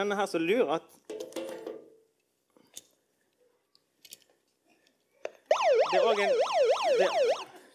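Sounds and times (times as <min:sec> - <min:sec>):
speech: 0:00.0 - 0:01.2, 0:05.9 - 0:07.4
megaphone's built-in siren warbling in rising-and-falling sweeps: 0:05.5 - 0:07.6.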